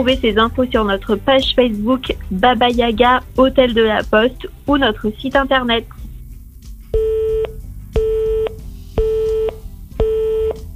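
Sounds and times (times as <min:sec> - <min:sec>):
speech: 0:00.0 - 0:06.0
answering machine telephone line beeps: 0:07.0 - 0:10.6.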